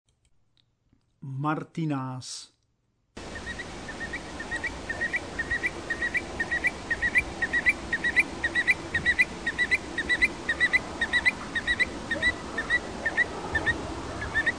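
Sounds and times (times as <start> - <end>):
background hiss: 0.4 - 14.5
speech: 1.2 - 2.6
Eurasian stone-curlew calls: 3.2 - 14.5.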